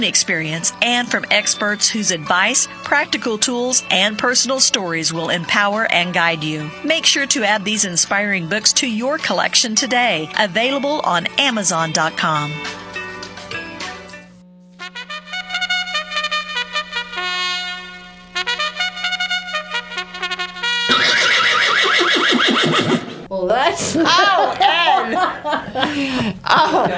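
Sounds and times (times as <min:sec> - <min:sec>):
speech: 0:00.0 - 0:12.8, 0:26.0 - 0:26.9
bright brassy musical jingle: 0:14.8 - 0:21.5
loud wavering horse whinny: 0:20.9 - 0:23.3
laughter: 0:23.7 - 0:26.9.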